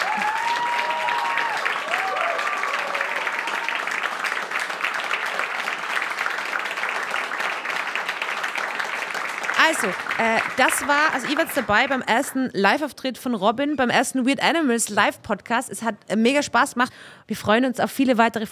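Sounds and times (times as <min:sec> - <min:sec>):
cheers and whoops: 0:00.0 - 0:04.2
large live audience applauding: 0:00.0 - 0:12.3
speech: 0:09.7 - 0:18.4.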